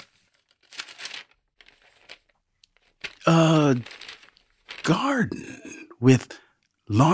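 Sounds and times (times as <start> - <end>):
paper being crumpled and folded: 0.0 - 5.2
speech: 3.3 - 4.0, 4.9 - 7.1.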